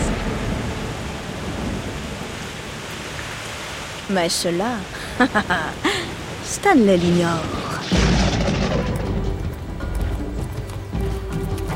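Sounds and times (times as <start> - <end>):
low rumble of thunder: 0.0 - 4.0, 7.0 - 10.8
torrential monsoon rain pouring: 0.0 - 11.7
speech: 4.1 - 5.9, 6.5 - 8.0
laughter: 5.2 - 6.2.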